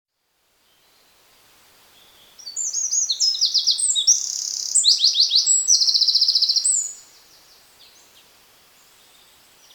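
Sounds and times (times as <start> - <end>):
Eurasian wren (Troglodytes troglodytes) singing: 2.4 - 7.0.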